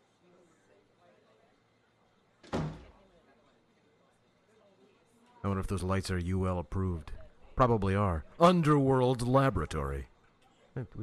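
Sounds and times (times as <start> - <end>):
door swinging shut with a thud and rattle: 2.4 - 3.0
speech: 5.4 - 10.1, 10.8 - 11.0.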